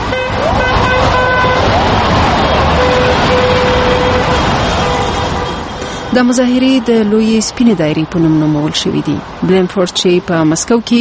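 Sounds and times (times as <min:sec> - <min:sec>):
car horns honking in support of protesters: 0:00.0 - 0:06.5
traffic noise on snow-covered streets in Moscow: 0:00.0 - 0:10.9
speech: 0:06.2 - 0:10.9.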